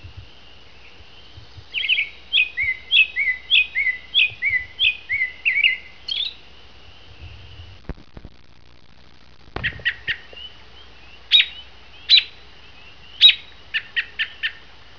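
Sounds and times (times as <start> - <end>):
American robin singing short slurred whistled notes: 0.7 - 6.4, 9.6 - 14.6.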